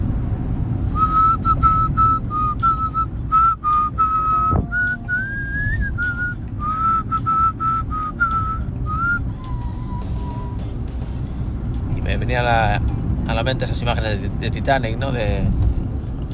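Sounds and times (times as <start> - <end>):
steady low rumble: 0.0 - 16.3
person whistling a slow song melody: 0.9 - 10.7
speech: 13.5 - 15.6.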